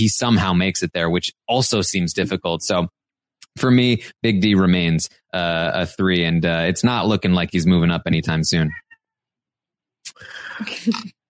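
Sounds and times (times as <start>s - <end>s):
speech: 0.0s - 3.0s, 3.6s - 8.8s, 10.0s - 11.2s
cat meowing: 8.6s - 9.0s.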